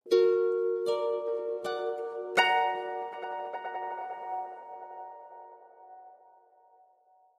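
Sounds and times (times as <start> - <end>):
harp arpeggio with reverb: 0.1 - 5.9.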